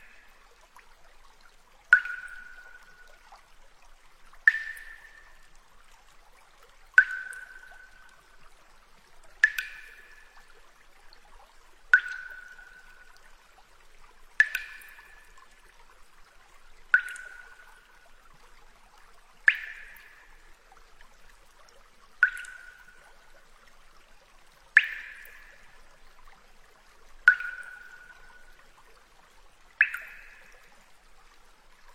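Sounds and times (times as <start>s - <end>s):
water droplets falling in an underground river cave: 1.8s - 3.2s, 4.3s - 5.6s, 6.9s - 8.5s, 9.2s - 10.9s, 11.8s - 13.4s, 14.3s - 15.8s, 16.9s - 18.5s, 19.4s - 20.8s, 22.1s - 23.3s, 24.7s - 26.2s, 27.2s - 28.7s, 29.7s - 30.7s.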